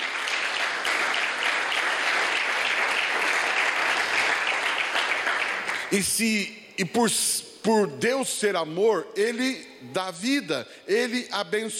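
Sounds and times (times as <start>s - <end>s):
audience applauding: 0.0s - 6.4s
speech: 5.9s - 11.7s.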